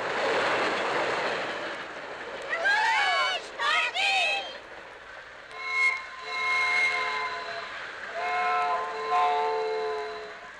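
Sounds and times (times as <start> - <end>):
speeding train roaring past: 0.0 - 10.5
train whistle toots and blasts: 5.5 - 10.5.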